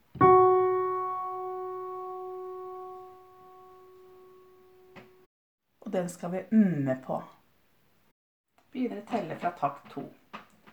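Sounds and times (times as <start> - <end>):
sustained starting pitch note: 0.2 - 5.2
speech: 6.0 - 7.4, 8.8 - 10.2.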